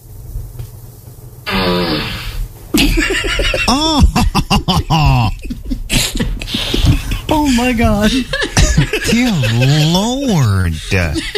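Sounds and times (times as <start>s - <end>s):
low rumble: 1.3s - 11.3s
sharp abrupt burst: 1.5s - 2.4s
fart sound effect from a small smart speaker: 1.5s - 2.5s
laughter: 2.8s - 11.3s
speech: 3.7s - 5.3s, 7.6s - 8.4s, 9.1s - 11.3s.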